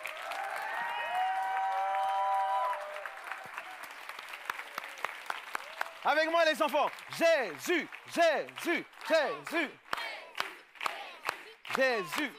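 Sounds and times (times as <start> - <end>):
excited voices and high cheers: 0.0 - 3.8
standing audience applauding: 0.0 - 12.3
speech: 6.0 - 9.8, 11.8 - 12.3.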